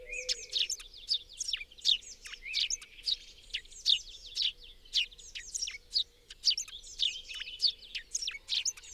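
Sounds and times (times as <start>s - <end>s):
Eurasian blue tit Cyanistes caeruleus calls: 0.0s - 8.9s.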